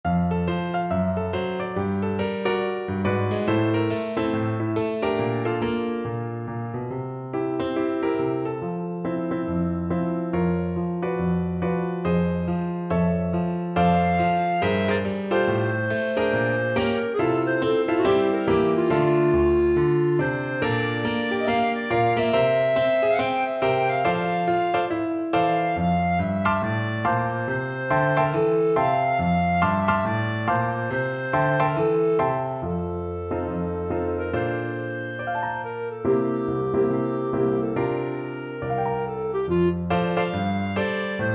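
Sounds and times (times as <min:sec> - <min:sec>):
clarinet: 0:00.0 - 0:41.3
jump blues music: 0:13.8 - 0:41.3.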